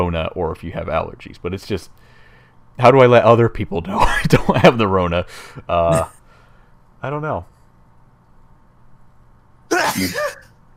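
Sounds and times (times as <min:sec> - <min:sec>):
speech: 0:00.0 - 0:02.1, 0:02.8 - 0:06.2, 0:07.0 - 0:07.5, 0:09.7 - 0:10.4
person sneezing: 0:09.7 - 0:10.5.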